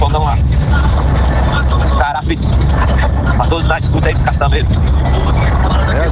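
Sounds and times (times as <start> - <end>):
diesel engine droning inside a dump truck cab: 0.0 - 6.1
road noise: 0.0 - 6.1
speech: 3.7 - 5.6.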